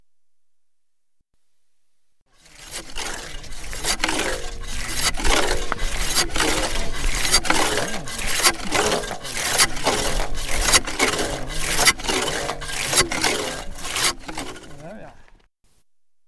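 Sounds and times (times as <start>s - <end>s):
saw cutting ice: 2.3s - 15.3s.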